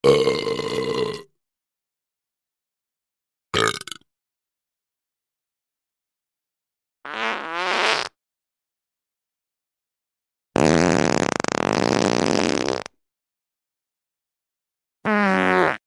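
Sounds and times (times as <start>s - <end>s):
short and long burping: 0.0s - 1.3s, 3.6s - 4.0s
short and long farting: 7.1s - 8.2s, 10.6s - 13.0s, 15.1s - 15.8s.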